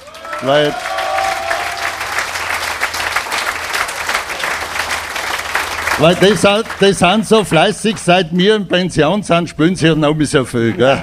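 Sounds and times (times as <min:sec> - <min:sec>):
audience applause at a folk music show: 0:00.0 - 0:08.2
speech: 0:00.4 - 0:00.9, 0:06.0 - 0:11.0.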